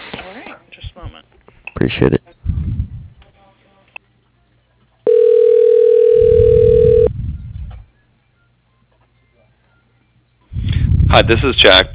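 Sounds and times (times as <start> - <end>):
speech: 1.8 - 2.2, 11.2 - 11.9
telephone line ringing while a call is transferred to voicemail: 5.1 - 7.1.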